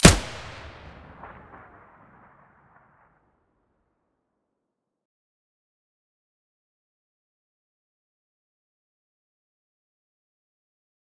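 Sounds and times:
Vihr weapon muzzle gunshot: 0.0s - 2.8s.

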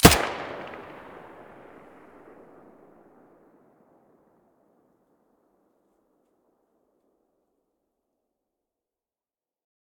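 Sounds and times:
submachine gun muzzle firing in stereo: 0.0s - 2.5s.

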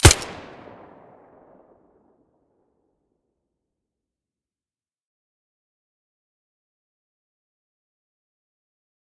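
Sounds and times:
silenced pistol gunshot: 0.0s - 1.1s.

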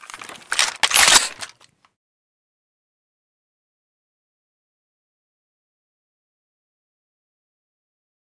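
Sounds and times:
rifle misfire: 0.2s - 1.6s.

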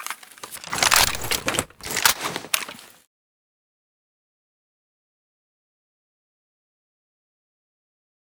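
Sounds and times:
AWM sniper rifle reloading: 0.0s - 3.0s.

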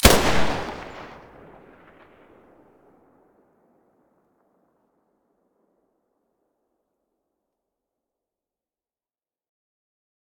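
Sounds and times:
weapon muzzle blasts: 0.0s - 2.0s.

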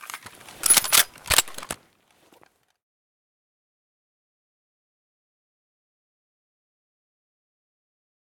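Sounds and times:
rifle misfire: 0.6s - 1.8s.

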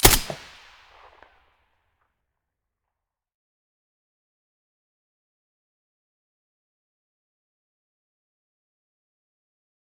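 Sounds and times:
M4A1 rifle shot with silencer: 0.0s - 1.3s.

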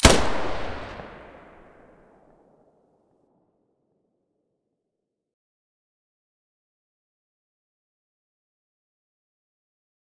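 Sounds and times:
weapon muzzle gunshot: 0.0s - 1.8s.

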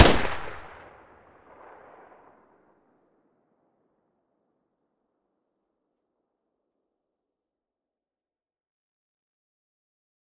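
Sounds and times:
Vector weapon muzzle blast: 0.0s - 0.8s.

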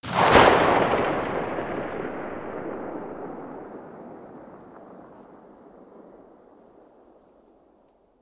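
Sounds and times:
Mosin rifle muzzle shot far: 0.0s - 5.2s.

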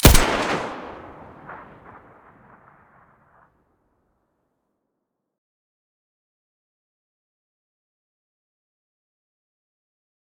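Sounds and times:
SA58 rifle gunshots with muzzle device: 0.0s - 2.6s.

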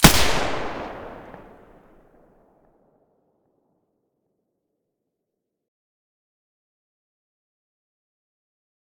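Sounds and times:
G36 rifle with silencer: 0.0s - 1.8s.

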